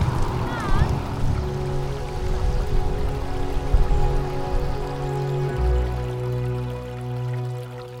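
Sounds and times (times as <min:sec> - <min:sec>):
water trickling and dripping in a shallow stream in a Chinese streamside garden: 0:00.0 - 0:07.9.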